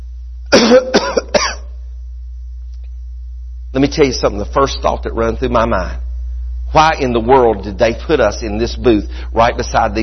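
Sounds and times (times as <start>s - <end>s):
steady low hum: 0.0s - 10.0s
harsh coughs: 0.5s - 1.8s
speech: 0.7s - 1.0s, 3.8s - 6.1s, 6.7s - 10.0s.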